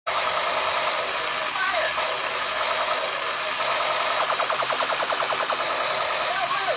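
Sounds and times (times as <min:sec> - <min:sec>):
toy gun firing: 0:00.1 - 0:06.7.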